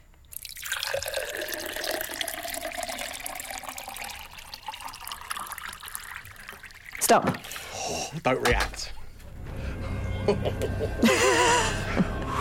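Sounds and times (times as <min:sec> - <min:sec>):
liquid pouring into a glass: 0:00.3 - 0:07.7
speech: 0:07.1 - 0:09.0, 0:10.3 - 0:12.2
laughter: 0:10.2 - 0:12.3.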